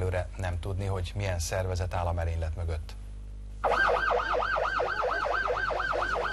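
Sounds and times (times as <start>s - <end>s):
speech: 0.2s - 3.0s
ambulance siren wailing: 3.6s - 6.3s.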